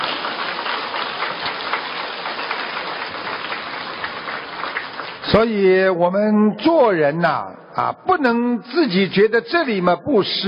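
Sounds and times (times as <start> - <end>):
audience applause: 0.0 - 5.5
speech: 5.3 - 10.4.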